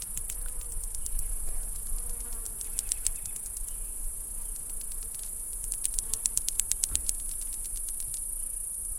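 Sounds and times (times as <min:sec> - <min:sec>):
cicadas making rapid dry ticking clicks: 0:00.0 - 0:08.4
several cicadas singing in a high-pitched shimmering drone: 0:00.0 - 0:08.9.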